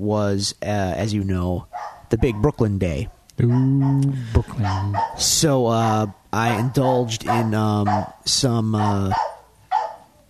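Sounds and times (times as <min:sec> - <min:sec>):
speech: 0:00.0 - 0:09.3
dogs barking in short sharp bursts: 0:01.6 - 0:10.2.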